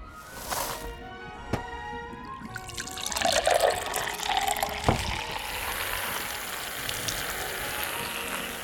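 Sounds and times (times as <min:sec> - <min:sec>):
vinegar poured onto baking soda: 0:02.2 - 0:08.6
baking soda and vinegar foaming: 0:02.4 - 0:08.6.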